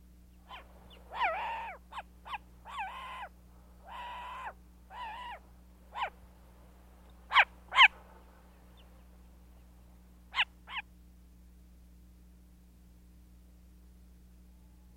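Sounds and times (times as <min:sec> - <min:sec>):
faint steady hum: 0:00.0 - 0:14.9
eared owl calling: 0:00.4 - 0:06.2, 0:07.2 - 0:09.0, 0:10.3 - 0:10.9.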